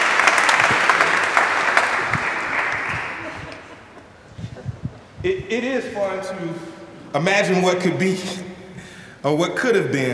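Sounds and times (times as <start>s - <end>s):
audience applause: 0.0s - 4.0s
speech: 5.2s - 8.5s, 9.2s - 10.1s.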